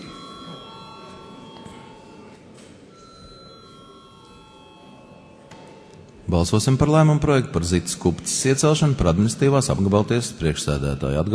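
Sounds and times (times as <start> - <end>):
parliament chamber bell rung before a vote: 0.0 - 6.0
speech: 6.3 - 11.3.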